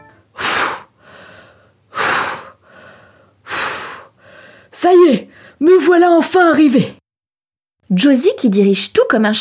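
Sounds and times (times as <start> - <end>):
grandfather panting heavily after running: 0.4 - 4.6
speech: 4.8 - 7.0, 7.9 - 9.3.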